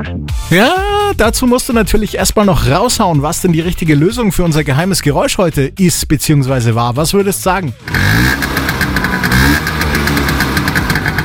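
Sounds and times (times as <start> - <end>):
speech: 0.0 - 8.5
old Vespa scooter engine puttering: 7.8 - 11.2.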